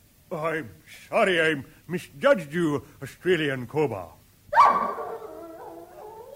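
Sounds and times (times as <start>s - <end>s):
speech: 0.3s - 4.8s
dog barking and howling into a drawn-out whine: 4.5s - 6.3s.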